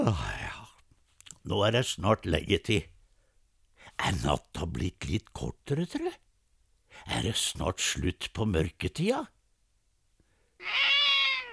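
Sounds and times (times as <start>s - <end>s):
speech: 0.0s - 0.4s, 1.4s - 2.9s, 4.0s - 6.2s, 6.9s - 9.4s, 10.6s - 11.0s
cat meowing in a backyard: 10.6s - 11.5s.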